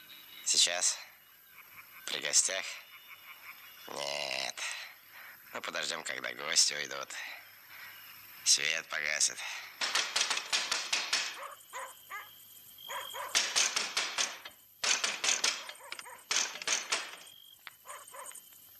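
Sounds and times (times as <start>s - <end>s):
speech: 0.6s - 1.1s, 2.1s - 2.8s, 3.9s - 4.7s, 5.5s - 7.4s, 8.5s - 10.0s
knocking on a door: 9.8s - 11.4s, 13.3s - 17.2s.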